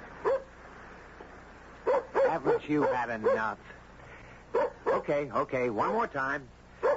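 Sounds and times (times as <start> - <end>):
hiss: 0.0 - 6.9
dog yipping barks: 0.2 - 0.5, 1.8 - 3.5, 4.6 - 5.1
speech: 2.3 - 3.8, 5.0 - 6.6.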